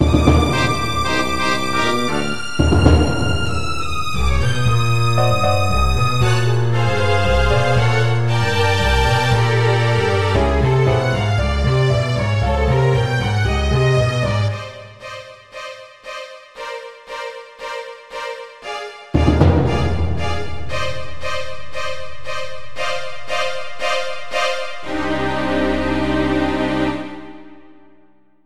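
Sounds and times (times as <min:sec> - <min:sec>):
horror suspense music loop: 0:00.0 - 0:15.5, 0:19.2 - 0:27.9.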